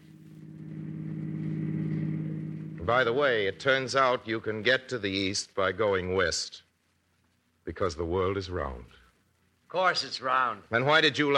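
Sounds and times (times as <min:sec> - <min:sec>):
car engine humming: 0:00.0 - 0:03.7
speech: 0:02.9 - 0:06.7, 0:07.7 - 0:09.0, 0:09.7 - 0:11.3.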